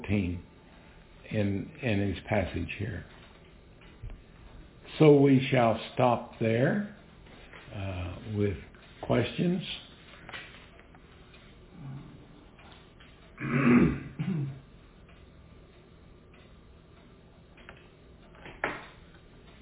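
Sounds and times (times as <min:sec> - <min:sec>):
faint noise: 0:00.0 - 0:19.5
speech: 0:00.1 - 0:00.5, 0:01.3 - 0:03.2, 0:05.0 - 0:07.0, 0:07.7 - 0:09.8
short guttural burp: 0:13.4 - 0:14.6.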